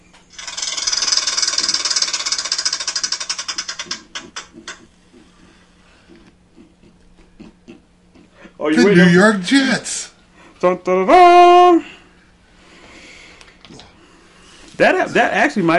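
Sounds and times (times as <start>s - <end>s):
prize wheel spinning and clicking: 0.3s - 4.8s
speech: 8.6s - 9.9s, 10.6s - 11.9s, 14.8s - 15.7s.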